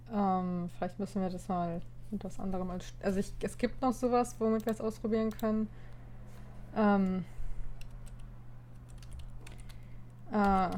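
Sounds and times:
low electrical hum: 0.0s - 10.7s
speech: 0.1s - 5.9s, 6.8s - 7.4s, 10.3s - 10.7s
computer keyboard typing: 4.5s - 5.6s, 7.8s - 10.7s.

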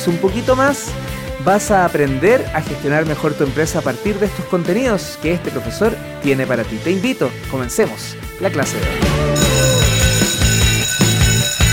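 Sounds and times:
speech: 0.0s - 9.4s
loud electric school bell ringing: 9.4s - 11.7s.

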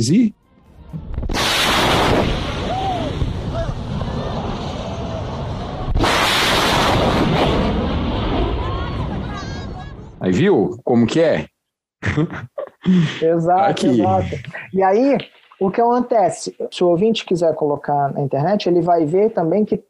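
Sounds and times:
speech: 0.0s - 1.0s, 10.2s - 19.8s
airplane sonic boom from breaking the sound barrier: 0.9s - 10.2s
laughter: 12.0s - 13.2s.

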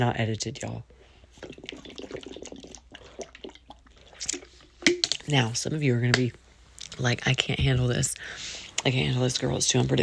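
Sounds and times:
speech: 0.0s - 1.6s, 5.3s - 6.4s, 7.0s - 10.0s
person gulping and swallowing water from a water bottle: 1.3s - 5.2s.

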